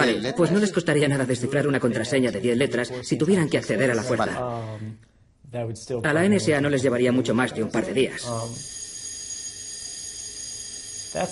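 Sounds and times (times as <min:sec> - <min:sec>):
speech: 0:00.0 - 0:08.8
fire alarm ringing: 0:08.2 - 0:11.2.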